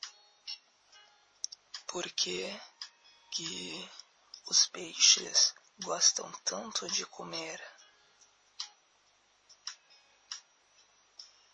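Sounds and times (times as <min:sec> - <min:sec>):
faint hiss: 0:00.0 - 0:11.5
clock ticking like a countdown: 0:01.4 - 0:07.8, 0:09.5 - 0:11.5
speech: 0:01.9 - 0:02.7, 0:03.3 - 0:07.7.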